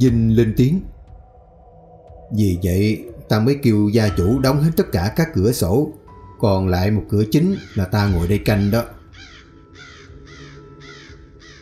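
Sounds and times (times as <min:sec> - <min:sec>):
speech: 0:00.0 - 0:00.9, 0:02.3 - 0:09.0
large crow cawing: 0:07.5 - 0:11.5.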